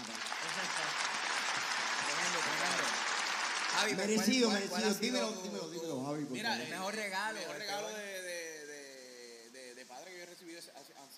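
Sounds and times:
audience applauding: 0:00.0 - 0:05.4
speech: 0:03.8 - 0:08.2.

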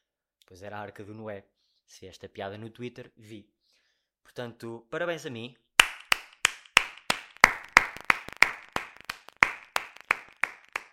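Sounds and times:
speech: 0:00.5 - 0:03.6, 0:04.2 - 0:05.6
single pair of hands clapping: 0:05.8 - 0:10.9.

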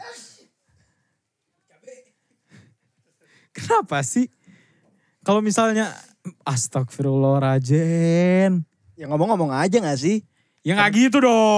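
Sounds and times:
sneeze: 0:00.0 - 0:00.6
speech: 0:03.6 - 0:04.4, 0:05.3 - 0:11.5.

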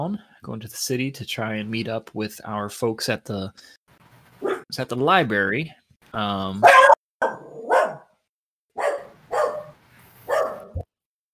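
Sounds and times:
speech: 0:00.0 - 0:03.8, 0:04.4 - 0:06.9
dog barking: 0:04.4 - 0:04.7, 0:06.6 - 0:08.1, 0:08.8 - 0:10.8.

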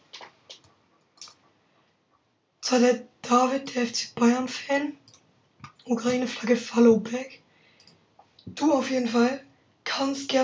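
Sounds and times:
computer mouse clicks: 0:00.1 - 0:01.5, 0:05.0 - 0:05.9, 0:07.8 - 0:08.0
speech: 0:02.7 - 0:05.0, 0:05.9 - 0:07.4, 0:08.5 - 0:09.4, 0:10.0 - 0:10.4.

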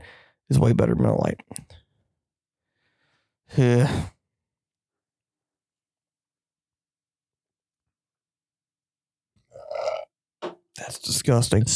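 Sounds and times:
speech: 0:00.5 - 0:01.8, 0:03.5 - 0:04.1, 0:10.8 - 0:11.7
person burping: 0:09.5 - 0:10.1.

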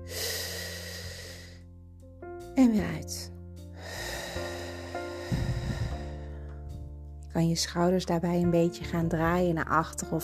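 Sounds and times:
deep breath in through the nose: 0:00.0 - 0:01.6, 0:03.8 - 0:06.5
speech: 0:02.6 - 0:03.4, 0:07.4 - 0:10.2.

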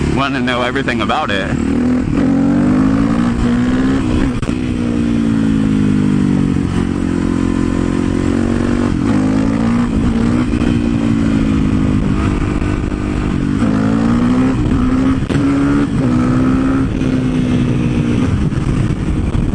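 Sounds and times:
motorcycle engine revving during wheelies: 0:00.0 - 0:19.5
speech: 0:00.2 - 0:02.3.

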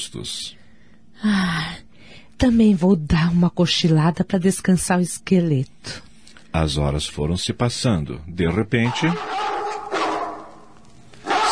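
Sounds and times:
speech: 0:00.0 - 0:00.6, 0:01.2 - 0:01.8, 0:02.4 - 0:09.4
pet dog barking in the garden: 0:08.8 - 0:11.5.

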